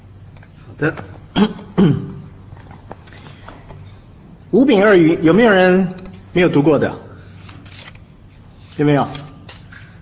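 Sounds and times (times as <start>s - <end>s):
speech: 0.8s - 2.0s, 4.5s - 7.0s, 8.8s - 9.2s
audience member coughing: 1.3s - 2.3s.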